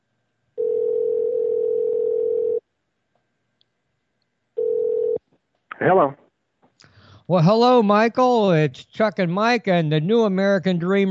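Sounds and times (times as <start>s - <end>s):
telephone line tone while placing a call: 0.6s - 2.6s, 4.6s - 5.2s
speech: 5.8s - 6.2s, 6.8s - 11.0s.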